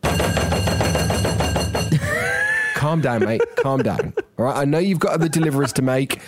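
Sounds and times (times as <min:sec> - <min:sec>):
imitated loud banging knocks on a door: 0:00.0 - 0:01.9
laughter: 0:01.9 - 0:06.2
speech: 0:02.9 - 0:06.2.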